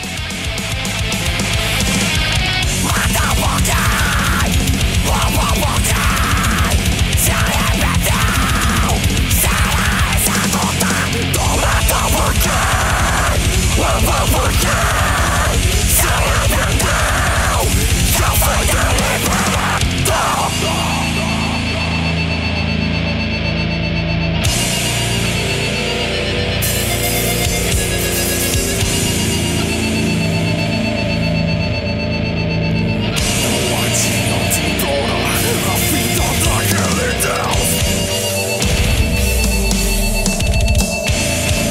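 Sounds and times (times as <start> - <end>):
pounding drums in a metal song: 0.0 - 21.3, 35.3 - 41.6
harsh shouted vocals in a metal song: 0.0 - 23.0, 33.0 - 41.6
heavy distorted guitars in a metal song: 0.0 - 41.6.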